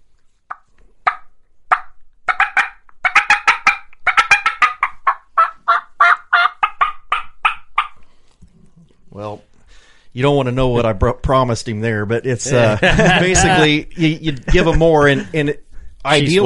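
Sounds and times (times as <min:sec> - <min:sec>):
turkey hen cutting calls made on a game call: 0:00.5 - 0:08.1
speech: 0:10.1 - 0:16.4
laughter: 0:12.4 - 0:15.6.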